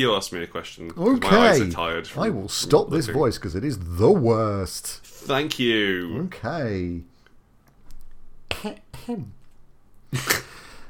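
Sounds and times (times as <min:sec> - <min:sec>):
speech: 0:00.0 - 0:07.1, 0:08.6 - 0:09.4, 0:10.1 - 0:10.4
person coughing: 0:08.5 - 0:09.3.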